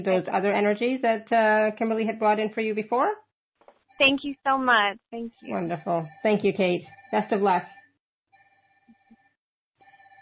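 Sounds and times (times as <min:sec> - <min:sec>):
speech: 0:00.0 - 0:03.2, 0:04.0 - 0:07.8
telephone ringing in buzzing bursts: 0:03.8 - 0:10.1.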